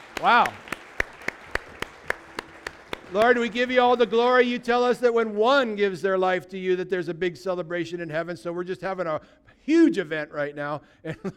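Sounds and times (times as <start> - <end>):
church audience clapping in unison: 0.0 - 5.8
speech: 0.2 - 0.6, 3.1 - 11.3.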